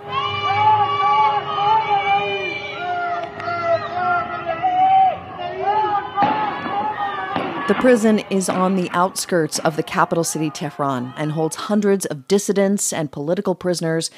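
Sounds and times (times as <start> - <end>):
many people shouting and screaming in distress during a prison fire: 0.0 - 12.0
gunfire during a fire at a prison: 6.2 - 10.6
speech: 7.7 - 14.1.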